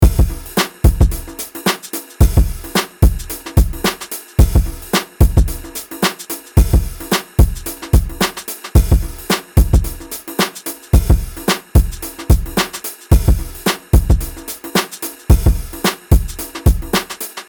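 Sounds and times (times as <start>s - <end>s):
kick drums: 0.0s - 1.3s, 2.2s - 5.7s, 6.6s - 10.0s, 11.0s - 14.4s, 15.3s - 17.1s.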